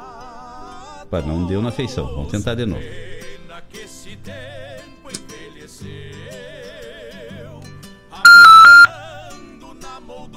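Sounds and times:
speech: 1.1 - 3.2
high-pitched ringing tone beep on a phone call: 8.3 - 8.9.

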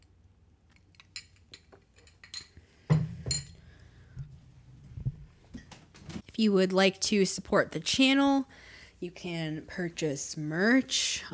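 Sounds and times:
glasses clinking in a celebratory toast: 0.9 - 3.8
speech: 6.4 - 11.3.

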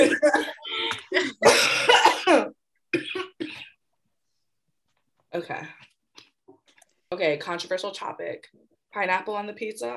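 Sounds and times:
harsh chesty coughing: 0.0 - 3.8
speech: 5.4 - 5.8, 7.2 - 9.9.

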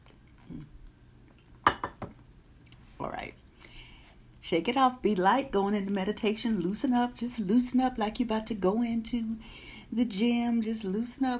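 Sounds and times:
person sipping water: 0.0 - 1.0
speech: 4.5 - 11.3.

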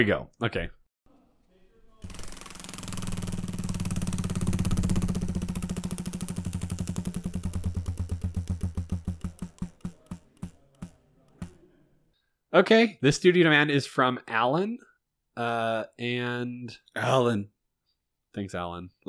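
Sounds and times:
speech: 0.0 - 0.8, 12.6 - 17.6, 18.4 - 19.0
prize wheel spinning with ratcheting ticks: 1.9 - 11.6.

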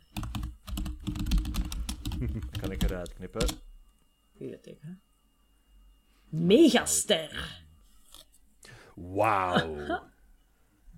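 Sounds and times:
typing on a computer keyboard: 0.1 - 3.6
speech: 2.2 - 3.7, 4.4 - 5.1, 6.3 - 7.6, 9.0 - 10.1
laughter: 9.4 - 10.1.

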